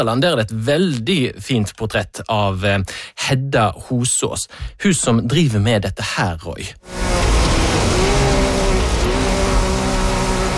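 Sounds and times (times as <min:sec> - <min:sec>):
speech: 0:00.0 - 0:07.3
off-road rally car tire noise: 0:06.8 - 0:10.5
off-road rally cars roaring: 0:06.8 - 0:10.5.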